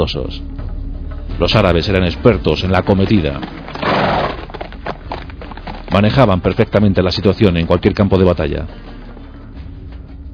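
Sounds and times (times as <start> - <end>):
speech: 0.0 - 0.5, 1.4 - 4.0, 5.9 - 8.9
horse hoofbeats thudding over the ground: 2.0 - 9.5
horse whinnying: 3.3 - 6.0.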